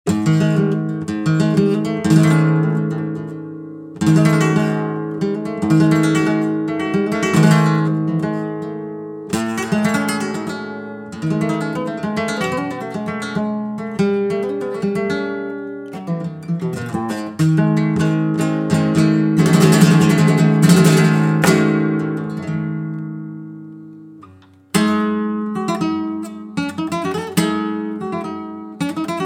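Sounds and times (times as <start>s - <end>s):
Kremona guitar with spruce top and rosewood playing: 0.1s - 29.2s.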